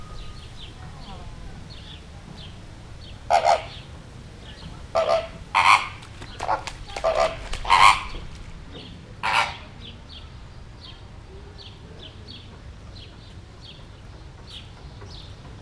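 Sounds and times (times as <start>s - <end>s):
rosy flamingo calling in a zoo: 0.0s - 10.0s
several people in background: 0.0s - 15.6s
wind: 0.0s - 15.6s.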